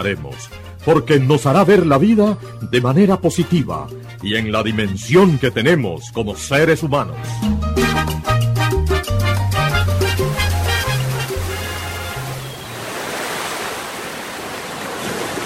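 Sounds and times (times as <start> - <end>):
speech: 0.0 - 7.9
melodic musical passage: 0.0 - 12.6
ocean surf washing onto the shore: 10.3 - 15.4.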